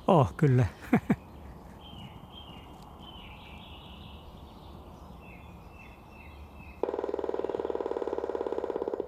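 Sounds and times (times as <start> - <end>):
faint birdsong: 0.0 - 9.0
speech: 0.1 - 1.2
Grey-headed Woodpecker drumming on a fairly new nest box: 6.8 - 9.0.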